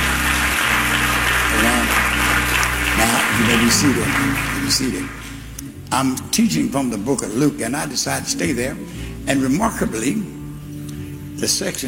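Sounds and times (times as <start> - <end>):
church congregation applauding during a sermon: 0.0 - 5.7
speech: 3.5 - 5.2, 5.9 - 10.3, 11.4 - 11.8.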